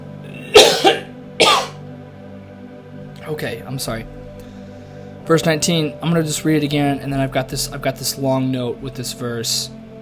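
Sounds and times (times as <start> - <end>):
coughing and throat clearing with something stuck in the throat: 0.2 - 1.8
speech: 3.2 - 4.2, 5.3 - 9.8.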